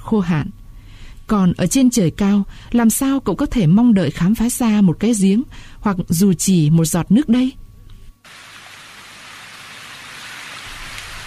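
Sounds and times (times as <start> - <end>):
speech: 0.1 - 0.6, 1.3 - 7.6
heavy rain falling: 8.3 - 11.2.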